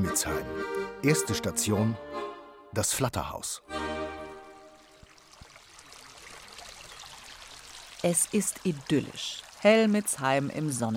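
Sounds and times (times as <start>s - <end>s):
speech: 0.0s - 3.8s, 8.0s - 10.9s
small brook babbling and trickling: 4.0s - 10.9s.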